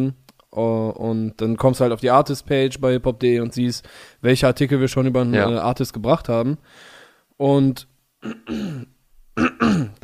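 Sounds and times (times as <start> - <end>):
speech: 0.0 - 10.0
throat clearing: 8.2 - 10.0.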